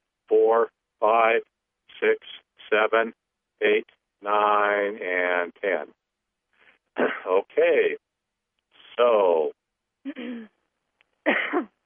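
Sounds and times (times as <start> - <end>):
speech: 0.5 - 6.0, 7.0 - 8.0, 9.0 - 10.5, 11.2 - 11.7
throat clearing and coughing from an irritated throat: 7.0 - 7.5, 10.1 - 10.5, 11.2 - 11.8.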